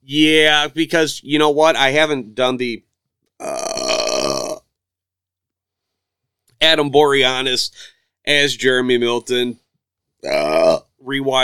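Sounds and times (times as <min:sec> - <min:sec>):
speech: 0:00.1 - 0:03.7, 0:06.6 - 0:09.6, 0:10.2 - 0:11.4
loud drawn-out deep resonant burp: 0:03.4 - 0:04.8, 0:10.2 - 0:10.9.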